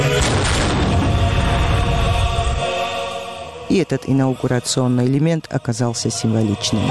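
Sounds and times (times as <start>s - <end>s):
ceremonial cannon salvo marking a presidential inauguration in Telavi: 0.2s - 2.2s
speech: 3.7s - 6.9s.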